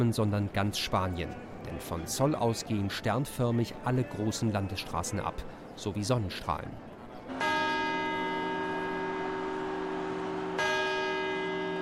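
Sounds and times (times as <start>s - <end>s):
speech: 0.0s - 7.5s
clock tower bell chiming: 7.3s - 11.8s.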